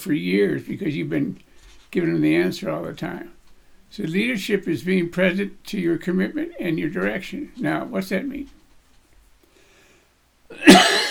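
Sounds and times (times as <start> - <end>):
speech: 0.0 - 8.6
man with a dry throat coughing: 10.5 - 11.0.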